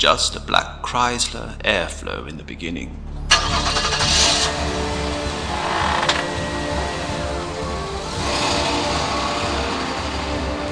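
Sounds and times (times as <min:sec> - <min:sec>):
speech: 0:00.0 - 0:03.8
car engine starting and driving off: 0:03.0 - 0:10.6.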